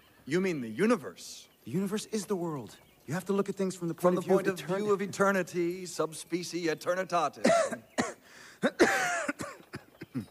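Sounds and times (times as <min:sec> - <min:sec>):
speech: 0:00.3 - 0:09.1
person coughing harshly: 0:07.4 - 0:10.2.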